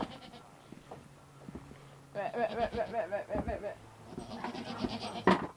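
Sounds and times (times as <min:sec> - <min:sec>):
goats bleating at milking time: 0:00.0 - 0:00.5, 0:02.2 - 0:05.3.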